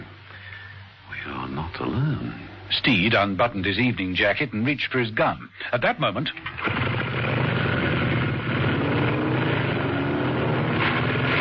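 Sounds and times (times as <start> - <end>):
speech: 1.9 - 6.9
two motorcycles roaring down a parking garage: 6.4 - 11.3.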